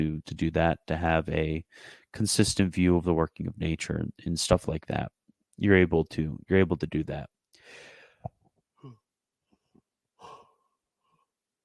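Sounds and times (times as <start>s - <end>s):
speech: 0.0s - 7.9s
person yawning with wheezy breathy sighing exhale: 10.2s - 10.6s.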